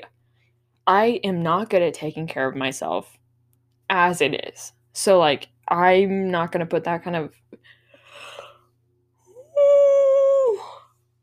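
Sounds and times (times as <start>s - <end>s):
speech: 0.8s - 3.2s, 3.9s - 8.3s
person yawning: 9.3s - 10.9s.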